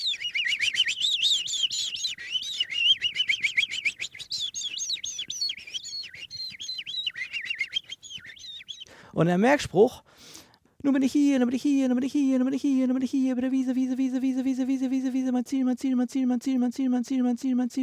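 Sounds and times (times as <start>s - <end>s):
person imitating the song of a skylark: 0.0s - 8.9s
speech: 9.2s - 10.1s, 10.8s - 17.8s.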